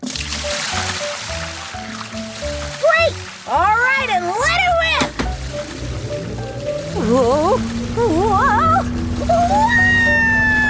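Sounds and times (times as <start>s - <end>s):
liquid pouring in a steady splashing stream: 0.0s - 9.8s
low repeating tonal pattern: 4.8s - 9.3s.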